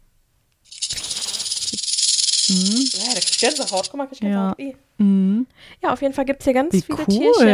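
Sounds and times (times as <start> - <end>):
clattering flap of a toy sound book rattling: 0.7 - 3.9
speech: 2.5 - 7.5.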